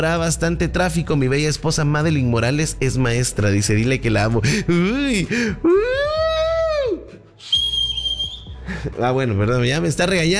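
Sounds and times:
speech: 0.0s - 6.1s, 8.8s - 10.3s
man whistling: 7.4s - 8.6s.

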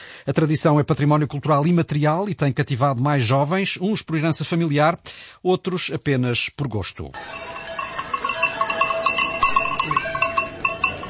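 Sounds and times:
speech: 0.2s - 7.6s
cowbells clanking on a herd of cows driven up mountains: 7.2s - 11.0s.

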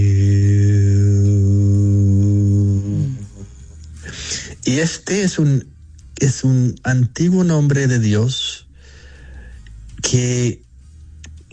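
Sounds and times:
low voice chanting the word Hu as a spiritual exercise: 0.0s - 4.0s
speech: 4.7s - 8.5s, 10.1s - 10.6s.

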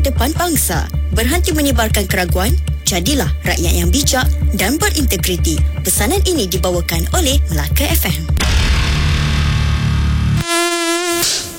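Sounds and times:
speech: 0.2s - 8.6s
loud dense rush of noise: 8.4s - 10.4s
Aedes mosquito buzzing: 10.4s - 11.5s.

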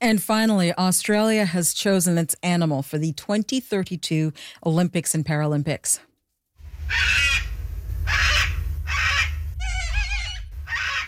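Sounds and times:
speech: 0.0s - 6.1s, 6.9s - 7.4s
steady low rumble of noise: 6.6s - 11.0s
cockatoo screeching with harsh raspy calls: 6.8s - 11.0s.

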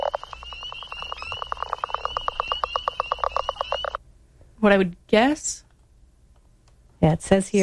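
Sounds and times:
spring peeper frog calling: 0.0s - 4.0s
speech: 4.6s - 5.6s, 7.0s - 7.6s.

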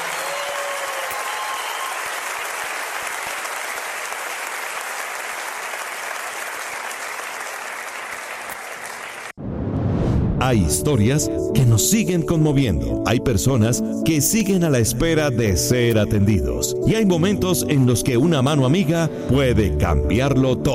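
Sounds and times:
sustained applause from a sizable crowd: 0.0s - 9.4s
speech: 10.4s - 20.7s.

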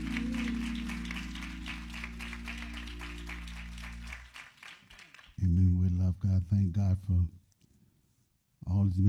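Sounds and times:
low sustained organ-like hum: 0.0s - 4.3s
crowd applauding: 0.0s - 5.4s
speech: 6.5s - 7.4s, 8.8s - 9.0s.

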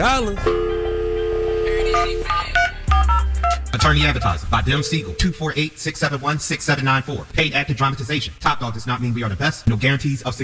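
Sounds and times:
long steady telephone dial tone: 0.4s - 3.3s, 4.7s - 5.5s
touch-tone keypad beeps dialing a phone call: 0.4s - 4.0s, 4.7s - 5.6s
speech: 3.8s - 10.4s.

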